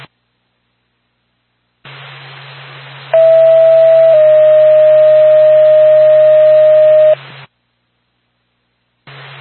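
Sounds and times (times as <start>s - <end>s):
radio channel static hiss: 1.8s - 7.5s, 9.1s - 9.3s
radio dispatch two-tone paging alert: 3.2s - 7.2s.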